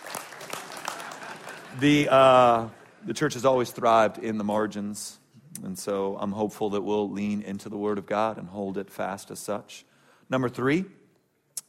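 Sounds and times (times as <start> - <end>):
audience clapping in a church during a sermon: 0.0 - 4.2
speech: 1.8 - 11.0.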